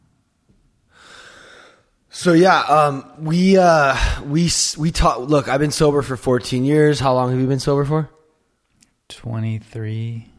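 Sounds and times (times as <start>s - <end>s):
breathing into the microphone: 0.9s - 2.0s, 3.9s - 4.3s
speech: 2.2s - 8.2s, 9.1s - 10.3s.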